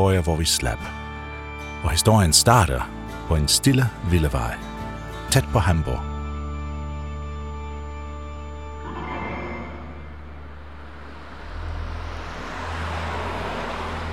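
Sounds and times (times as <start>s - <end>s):
speech: 0.0s - 1.0s, 1.8s - 4.7s, 5.3s - 6.1s
car driving past on a road at night: 8.8s - 14.1s.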